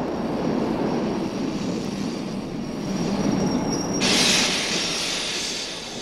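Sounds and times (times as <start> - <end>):
metro train rumbling and braking: 0.0 - 6.0
metro train wheels squealing: 2.8 - 6.0
metro train air hissing: 4.0 - 6.0.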